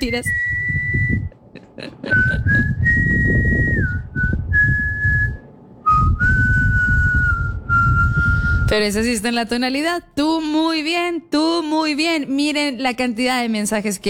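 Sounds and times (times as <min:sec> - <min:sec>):
speech: 0:00.0 - 0:00.6, 0:08.7 - 0:14.0
low rumbling background: 0:00.0 - 0:10.6
person whistling a tune with vibrato: 0:00.1 - 0:01.3, 0:02.1 - 0:08.7.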